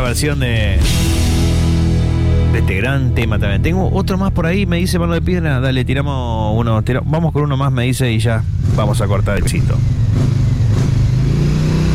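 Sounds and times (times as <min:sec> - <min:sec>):
speech: 0:00.1 - 0:01.8, 0:02.6 - 0:10.3
loud motorcycle engine rumbling and revving: 0:08.0 - 0:11.9.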